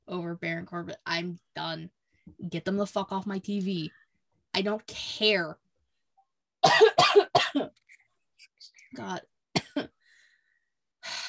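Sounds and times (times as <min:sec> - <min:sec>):
speech: 0:00.1 - 0:05.6, 0:08.9 - 0:09.9
person coughing: 0:06.6 - 0:07.8, 0:09.6 - 0:10.0.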